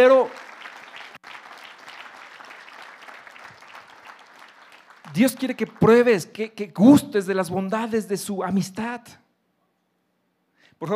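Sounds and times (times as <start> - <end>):
large group applauding: 0.0 - 6.2
speech: 5.2 - 9.2, 10.8 - 10.9.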